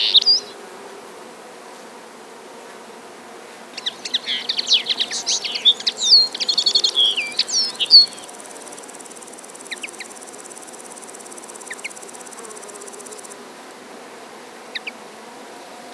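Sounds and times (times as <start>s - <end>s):
common linnet twittering song: 0.0s - 0.6s, 3.8s - 8.4s, 9.6s - 10.2s.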